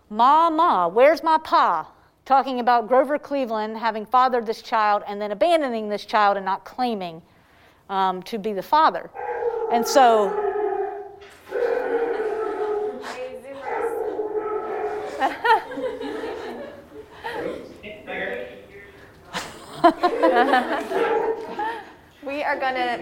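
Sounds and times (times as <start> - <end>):
speech: 0.1 - 7.3, 7.9 - 10.4, 19.8 - 21.0, 22.4 - 23.0
dog barking and yipping: 9.2 - 13.0, 13.6 - 15.4, 20.9 - 21.5
dog whimpering: 9.2 - 15.2
people laughing and chuckling: 11.6 - 13.2, 14.8 - 17.8, 19.3 - 22.0.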